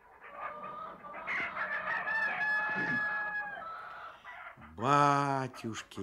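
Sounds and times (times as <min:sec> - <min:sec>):
crowd of hens clucking in a poultry yard: 0:00.0 - 0:06.0
rooster crowing: 0:00.3 - 0:04.3
speech: 0:04.8 - 0:06.0.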